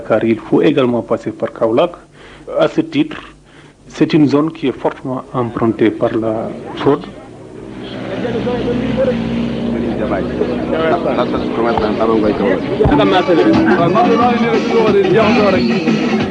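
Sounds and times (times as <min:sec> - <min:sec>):
speech: 0:00.0 - 0:03.3, 0:03.9 - 0:07.2, 0:10.0 - 0:16.2
murmur of many people talking at a central market: 0:02.0 - 0:16.2
many motorbike taxi engines revving: 0:06.4 - 0:14.4.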